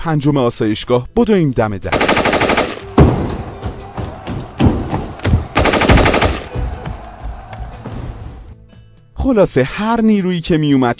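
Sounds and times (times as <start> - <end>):
speech: 0.0 - 2.5, 9.2 - 10.9
automatic gunfire inside a military training building: 1.9 - 3.2, 5.6 - 6.5
heavy thumping gunshots inside a military training building: 1.9 - 6.8.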